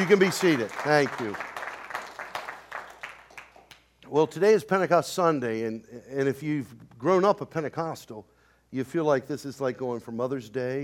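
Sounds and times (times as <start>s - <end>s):
speech: 0.0s - 1.5s, 4.1s - 10.8s
church audience in an auditorium clapping in a steady rhythmic beat: 0.0s - 4.0s.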